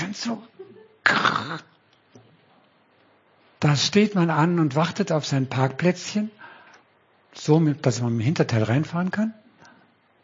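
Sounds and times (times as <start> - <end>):
speech: 0.2 - 1.8, 3.6 - 6.4, 7.4 - 9.4
person imitating a harsh raspy angry growl: 1.0 - 1.7.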